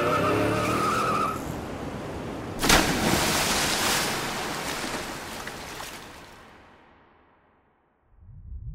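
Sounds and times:
car tires whining: 0:00.0 - 0:02.6
churning, rushing sea water: 0:00.0 - 0:06.6
car plunging off a wooden pier into the sea: 0:02.6 - 0:06.2.

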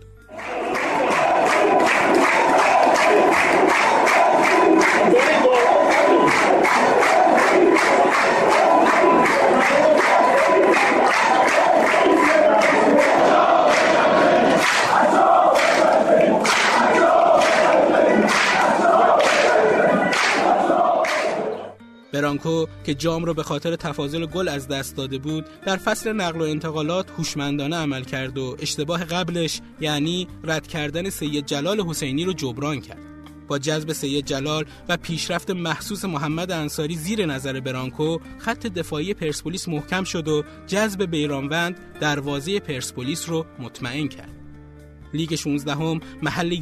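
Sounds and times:
rhythmic clapping of stadium crowd: 0:00.3 - 0:21.7
huge football stadium crowd cheering and chanting: 0:00.3 - 0:21.8
speech: 0:22.3 - 0:44.4, 0:45.1 - 0:46.5.

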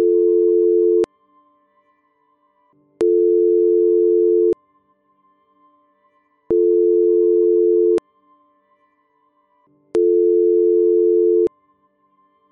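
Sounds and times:
telephone ringback tone ringing unanswered: 0:00.0 - 0:01.1, 0:03.1 - 0:04.6, 0:06.6 - 0:08.0, 0:10.0 - 0:11.5.

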